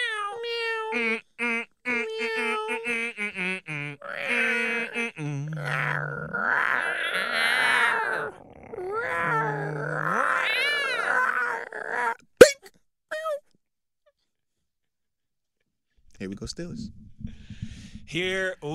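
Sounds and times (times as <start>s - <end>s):
cat-like yowls and wails standing in for a jaguar being beaten: 0.0s - 1.2s, 1.9s - 3.3s, 4.0s - 13.4s
speech: 0.9s - 1.5s, 16.5s - 17.0s, 18.1s - 18.7s.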